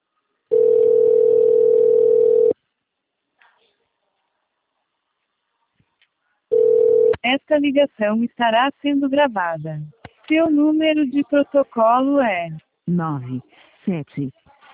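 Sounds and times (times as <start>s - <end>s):
telephone call tone while dialing a transport company: 0.5s - 2.6s, 6.5s - 7.2s
speech: 7.2s - 14.4s.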